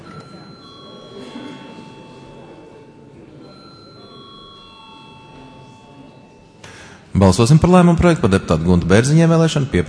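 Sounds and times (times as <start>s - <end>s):
bell ringing to call a vote: 0.0s - 6.9s
low murmur of voices in a large room: 0.0s - 9.8s
speech: 7.2s - 9.8s.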